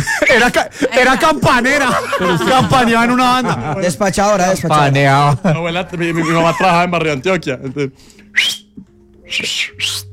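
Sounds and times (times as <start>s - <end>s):
laughter: 0.0s - 4.5s, 5.2s - 7.2s
speech: 0.3s - 8.6s, 9.3s - 10.1s
loud shrill mouth whistles: 8.2s - 10.1s.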